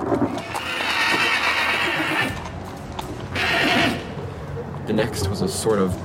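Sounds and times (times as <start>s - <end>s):
circus horse neighing: 0.0s - 2.6s, 3.3s - 4.2s
speech: 5.0s - 6.0s.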